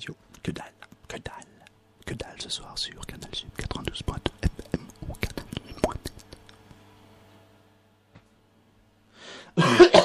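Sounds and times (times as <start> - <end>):
speech: 0.0 - 0.7, 2.4 - 4.3
man coughing: 9.6 - 10.0.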